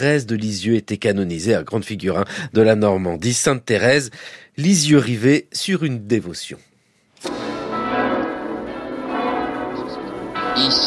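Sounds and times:
speech: 0.0s - 6.7s
church bells ringing: 7.2s - 10.8s.

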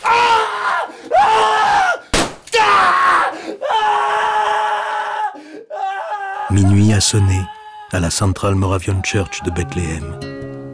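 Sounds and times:
young man screaming in agony after being shot in each knee with a revolver: 0.0s - 7.9s
sharp impact-like crack: 2.1s - 2.6s
speech: 6.6s - 10.5s.

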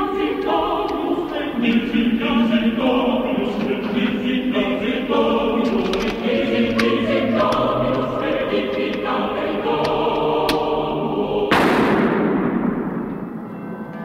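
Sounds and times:
sustained orchestral music: 0.0s - 14.0s
film gunshots: 11.5s - 13.0s
heavy booming gunshot: 11.5s - 13.3s.

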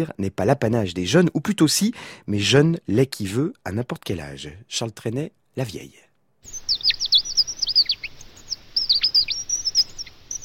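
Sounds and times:
speech: 0.0s - 6.6s
bird twittering: 6.4s - 10.4s.

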